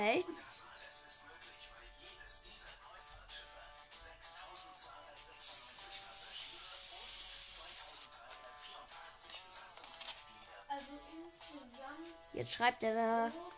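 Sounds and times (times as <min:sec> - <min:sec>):
speech: 0:00.0 - 0:00.6, 0:12.4 - 0:13.5
gas hissing from a lighter refill into a balloon: 0:05.3 - 0:08.1.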